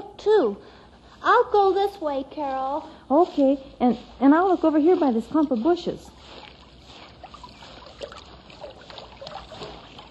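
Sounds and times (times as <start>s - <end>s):
speech: 0.2s - 6.4s
brook babbling: 6.2s - 10.0s.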